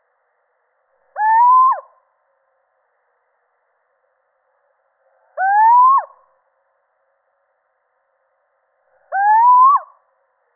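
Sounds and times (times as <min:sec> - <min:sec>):
male little owl mewing hoot: 0:01.2 - 0:01.9, 0:05.4 - 0:06.2, 0:09.0 - 0:10.0.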